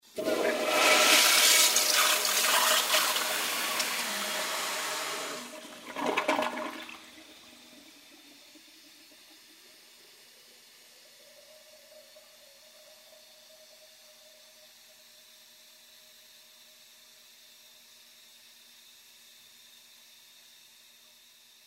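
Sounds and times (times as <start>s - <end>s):
toilet flushing: 0.0s - 16.4s.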